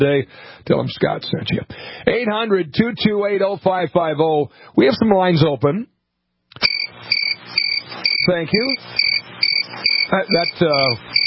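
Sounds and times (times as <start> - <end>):
speech: 0.0 - 5.9, 8.2 - 9.0, 9.7 - 11.2
crickets chirping sound effect: 6.6 - 11.2.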